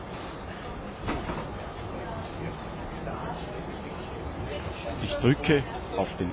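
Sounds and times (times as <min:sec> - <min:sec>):
faint voices murmuring: 0:00.0 - 0:06.3
tram rumbling as it rolls into a station stop: 0:00.0 - 0:06.3
clunk and rattle: 0:01.0 - 0:01.8
speech: 0:05.1 - 0:06.3.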